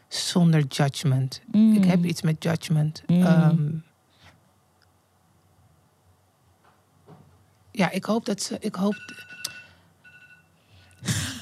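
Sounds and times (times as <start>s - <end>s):
speech: 0.4s - 3.9s, 7.8s - 9.4s
alarm clock ringing with high electronic tones: 9.0s - 10.5s
laughter: 11.0s - 11.4s.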